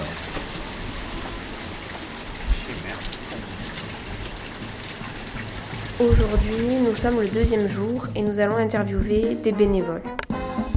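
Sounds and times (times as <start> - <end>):
steady rain pattering on a surface: 0.0 - 9.3
speech: 6.0 - 10.2.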